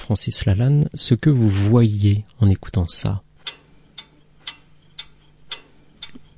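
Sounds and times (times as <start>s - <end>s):
faint low hum: 0.0s - 6.3s
speech: 0.1s - 3.3s
pendulum clock ticking: 2.6s - 6.3s.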